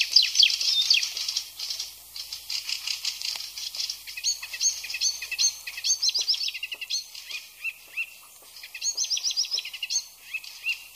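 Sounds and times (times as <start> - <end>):
Hippolais icterina icterine warbler singing: 0.0 - 10.9.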